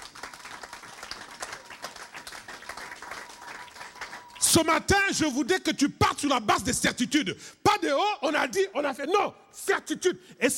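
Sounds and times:
church congregation applauding: 0:00.0 - 0:04.5
speech: 0:04.5 - 0:10.5.

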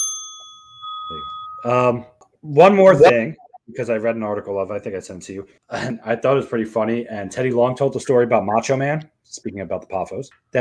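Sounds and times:
bright bell ding: 0:00.0 - 0:01.8
speech: 0:01.1 - 0:10.5.

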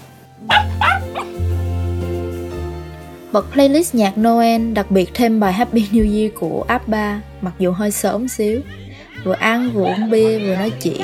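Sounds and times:
house dog barking excitedly on a rooftop in Saigon: 0:00.5 - 0:01.4
speech: 0:03.3 - 0:11.0
laughter: 0:08.0 - 0:11.0.

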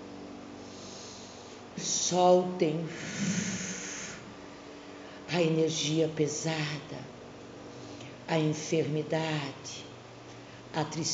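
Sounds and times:
speech: 0:01.8 - 0:03.4, 0:05.3 - 0:07.1, 0:08.3 - 0:09.9, 0:10.7 - 0:11.1
strong breathy exhale: 0:02.9 - 0:05.2.

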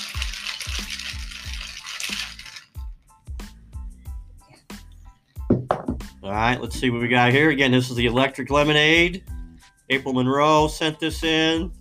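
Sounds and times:
cocktail shaker with ice rattling: 0:00.0 - 0:03.0
speech: 0:06.3 - 0:09.3, 0:09.9 - 0:11.7.

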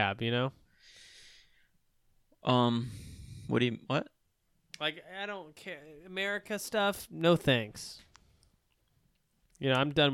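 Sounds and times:
speech: 0:00.0 - 0:01.0, 0:02.4 - 0:04.1, 0:04.8 - 0:08.1, 0:09.6 - 0:10.1
breathy exhale into a microphone: 0:00.8 - 0:01.7.

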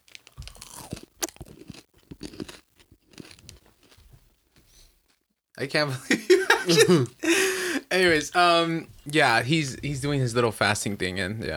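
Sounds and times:
crunchy snack being chewed: 0:00.0 - 0:05.2
speech: 0:05.6 - 0:11.5
laughter: 0:05.9 - 0:08.0.

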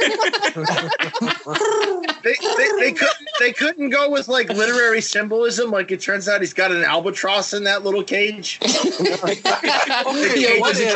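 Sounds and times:
laughter: 0:00.0 - 0:05.0, 0:08.6 - 0:10.9
speech: 0:00.2 - 0:01.8, 0:02.8 - 0:10.9
person imitating pigeon cooing: 0:01.4 - 0:03.2.

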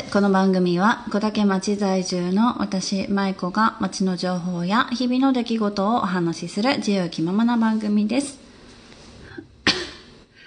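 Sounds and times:
speech: 0:00.1 - 0:08.4
person coughing: 0:09.3 - 0:10.2.

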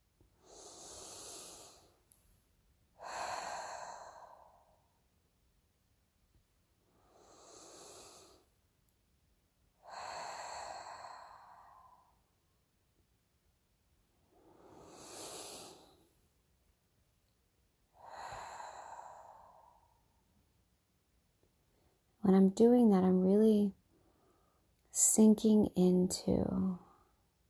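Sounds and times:
deep breaths in through the nose and out through the mouth during a guided meditation: 0:00.3 - 0:02.1, 0:03.0 - 0:05.0, 0:06.8 - 0:08.6, 0:09.8 - 0:12.4, 0:14.2 - 0:16.3, 0:17.9 - 0:20.3
speech: 0:22.3 - 0:23.8, 0:25.0 - 0:26.8.

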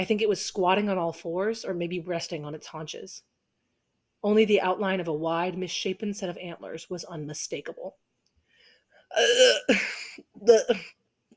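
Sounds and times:
speech: 0:00.0 - 0:03.3, 0:04.2 - 0:08.0, 0:09.1 - 0:11.0
burp: 0:09.1 - 0:09.8, 0:10.4 - 0:10.9.

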